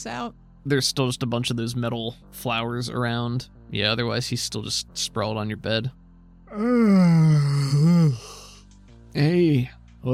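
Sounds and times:
speech: 0.0 - 8.4, 9.2 - 10.1
long voiced yawn from a person: 6.5 - 8.6.

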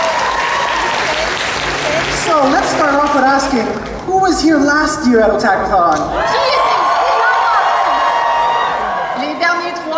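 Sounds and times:
audience applause after a performance: 0.0 - 4.3, 6.3 - 9.9
speech: 2.2 - 6.6.

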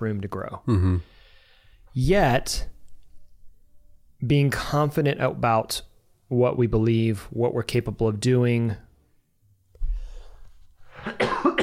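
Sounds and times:
speech: 0.0 - 1.2, 1.9 - 2.8, 4.2 - 8.8
person coughing raspy throaty coughs: 11.0 - 11.6.

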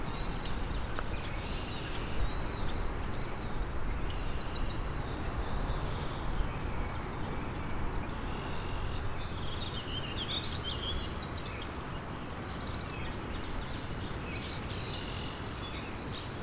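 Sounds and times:
black-throated blue warbler song: 0.0 - 16.4.

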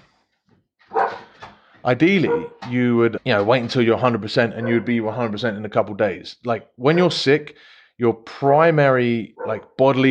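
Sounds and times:
dog barking: 0.9 - 1.3, 2.2 - 2.6, 4.6 - 5.4, 9.4 - 9.6
speech: 1.8 - 10.0.

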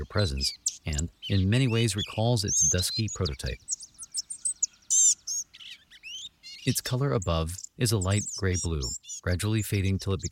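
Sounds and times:
speech: 0.0 - 3.8, 6.6 - 10.3
small bird giving thin high wheezy mewing notes: 0.0 - 10.3.

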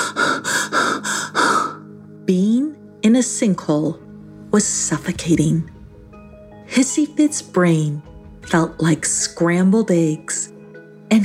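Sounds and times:
fast panicked breathing: 0.0 - 1.8
speech: 2.3 - 5.8, 6.8 - 10.5.

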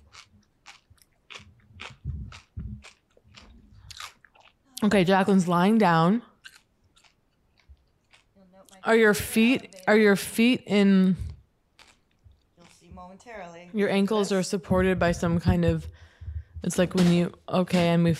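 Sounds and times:
crunchy chewing with crisp crackling bites: 0.0 - 4.9, 6.3 - 8.8, 11.2 - 13.0
speech: 4.8 - 6.3, 8.9 - 11.3, 13.1 - 16.0, 16.6 - 18.1.

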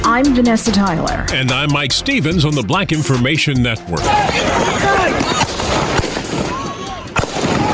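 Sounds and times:
speech: 0.2 - 5.0
crowd noise: 3.9 - 7.7
people shouting: 4.0 - 7.7
AR-15 rifle gunshots fired at protesters in Kenosha Wisconsin: 4.1 - 7.7.

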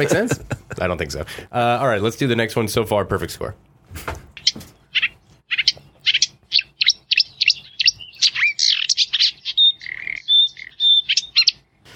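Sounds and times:
laughter: 0.0 - 1.0
speech: 0.0 - 4.2
marsh warbler singing: 4.4 - 11.9.

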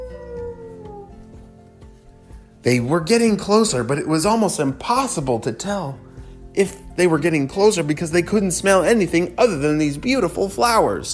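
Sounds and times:
wolf howling: 0.0 - 1.5
speech: 2.6 - 11.1.

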